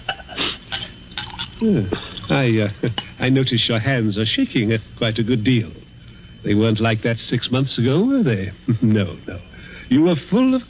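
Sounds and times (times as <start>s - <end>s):
glassware clinking: 0.0s - 3.2s
speech: 1.6s - 5.8s, 6.4s - 10.6s.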